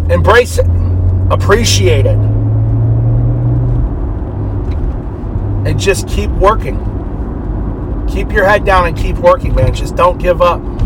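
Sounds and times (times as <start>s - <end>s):
bus pulling out into road traffic: 0.0s - 10.8s
road traffic noise: 0.0s - 10.8s
speech: 0.1s - 2.3s, 5.6s - 6.9s, 8.1s - 10.8s.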